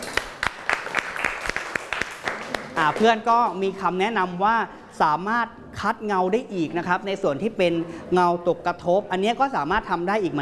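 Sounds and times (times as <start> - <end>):
applause for a student in a classroom: 0.0 - 3.0
speech: 2.8 - 10.4.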